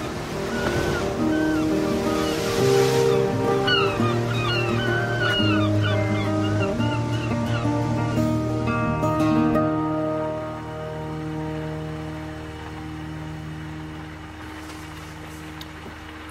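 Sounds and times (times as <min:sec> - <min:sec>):
waves washing at the water's edge: 0:00.0 - 0:16.2
bird-like chirps: 0:00.5 - 0:08.4.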